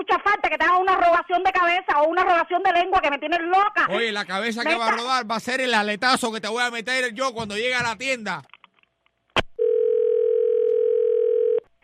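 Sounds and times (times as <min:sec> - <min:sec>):
speech: 0:00.0 - 0:08.6
telephone tone of an incoming collect call: 0:09.6 - 0:11.7.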